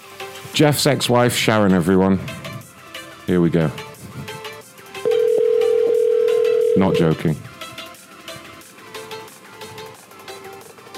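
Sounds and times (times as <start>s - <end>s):
speech: 0.6s - 2.4s, 3.3s - 3.9s, 6.8s - 7.5s
telephone dialing tones: 5.1s - 7.2s.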